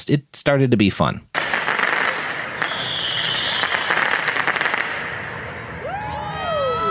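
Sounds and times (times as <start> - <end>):
speech: 0.0 - 1.5
fireworks crackling and popping at a street protest: 1.3 - 5.6
shrill whistling tones of fireworks: 1.4 - 6.9
dense roar of crowd noise at a street protest: 1.9 - 6.9.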